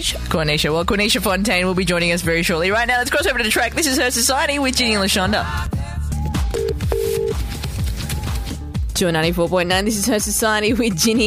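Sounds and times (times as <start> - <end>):
speech: 0.0 - 5.8, 9.0 - 11.2
music: 0.0 - 11.2
phone line electronic ringback tones on an outgoing call: 6.6 - 7.4.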